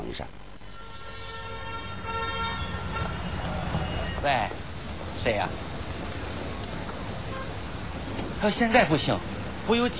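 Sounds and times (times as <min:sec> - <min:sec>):
rumbling road traffic: 0:00.0 - 0:09.9
speech: 0:00.2 - 0:00.5, 0:04.2 - 0:05.7, 0:08.4 - 0:09.9
car horn blaring in a traffic crash: 0:00.6 - 0:04.5, 0:07.2 - 0:07.7.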